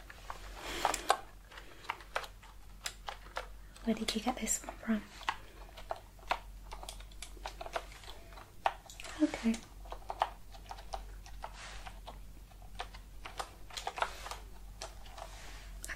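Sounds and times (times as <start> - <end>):
computer keyboard keys clacking: 0.7 - 15.3
speech: 3.9 - 5.3, 9.2 - 9.7.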